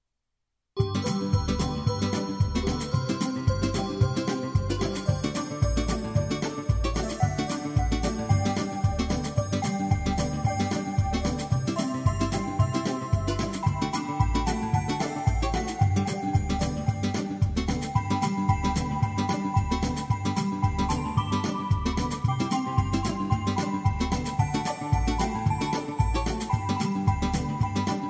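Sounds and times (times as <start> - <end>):
Christmas beat: 0.8 - 28.0.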